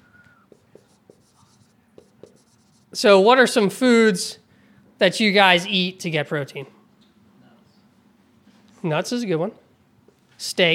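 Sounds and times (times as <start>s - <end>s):
marker writing on a board during a nutrition lesson: 0.5s - 3.0s
speech: 2.9s - 4.4s, 5.0s - 6.8s, 8.8s - 9.6s, 10.4s - 10.7s.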